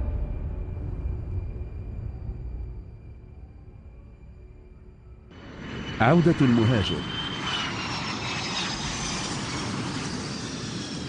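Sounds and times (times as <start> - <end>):
faint high jet engine whine: 0.0 - 11.0
jet engine roar of airplane landing: 5.0 - 11.0
speech: 6.0 - 7.2.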